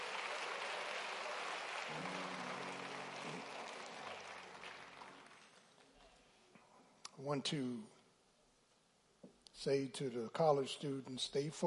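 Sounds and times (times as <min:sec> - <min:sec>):
audience applauding the choir in a large room: 0:00.0 - 0:06.0
speech: 0:07.2 - 0:08.0, 0:09.6 - 0:11.6.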